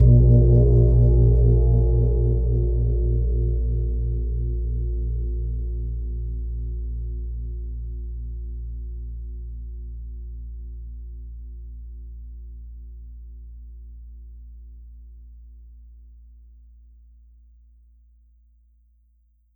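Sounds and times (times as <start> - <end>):
gong: 0.0 - 5.7.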